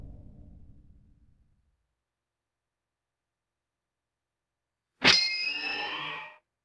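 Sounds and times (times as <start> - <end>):
springy ringing metallic impact: 5.0 - 6.3.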